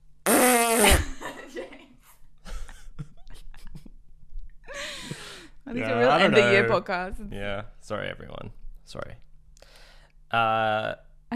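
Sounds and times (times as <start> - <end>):
loud raspy fart: 0.2 - 1.2
speech: 0.8 - 1.8, 5.8 - 9.2, 10.3 - 11.3.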